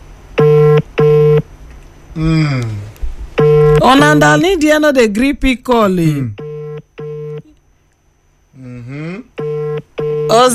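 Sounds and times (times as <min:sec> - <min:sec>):
electronic ringback tones of an outgoing phone call: 0:00.4 - 0:01.4, 0:03.4 - 0:03.9, 0:06.4 - 0:07.5, 0:09.4 - 0:10.4
speech: 0:02.2 - 0:02.8, 0:03.8 - 0:06.4, 0:10.4 - 0:10.5
short voice answering a phone line: 0:03.8 - 0:04.8.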